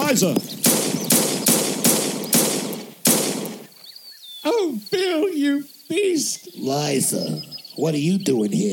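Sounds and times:
gunshots fired in a standoff: 0:00.0 - 0:03.7
speech: 0:00.1 - 0:00.6, 0:04.4 - 0:08.7.

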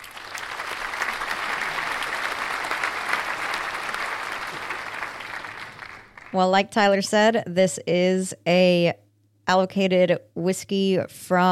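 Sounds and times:
crowd clapping: 0:00.0 - 0:06.4
speech: 0:06.3 - 0:11.5.

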